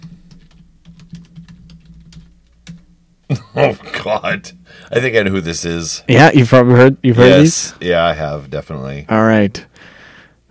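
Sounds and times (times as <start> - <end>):
typing on a computer keyboard: 0.0 - 2.8
speech: 3.3 - 9.7.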